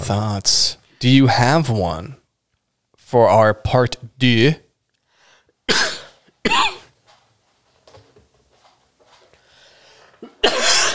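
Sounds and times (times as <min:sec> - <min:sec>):
speech: 0:00.1 - 0:02.2, 0:03.1 - 0:04.6, 0:05.7 - 0:06.8
person taking a quiet breath: 0:05.0 - 0:05.6, 0:09.4 - 0:10.2
person coughing harshly: 0:05.7 - 0:06.9, 0:10.2 - 0:10.9.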